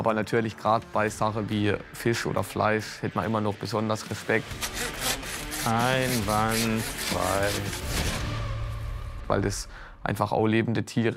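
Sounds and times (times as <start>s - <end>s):
speech: 0.0s - 8.1s, 9.3s - 11.1s
knife sawing through food in kitchen: 4.4s - 8.3s.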